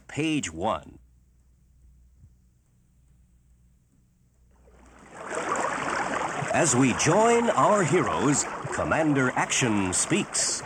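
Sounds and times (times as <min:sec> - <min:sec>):
speech: 0:00.2 - 0:01.0, 0:06.5 - 0:10.6
rushing river water: 0:04.6 - 0:10.6.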